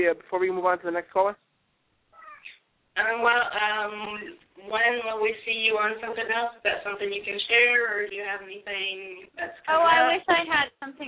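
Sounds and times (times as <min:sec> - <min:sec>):
speech: 0:00.0 - 0:01.5, 0:03.0 - 0:11.0
cat meowing: 0:02.1 - 0:02.6.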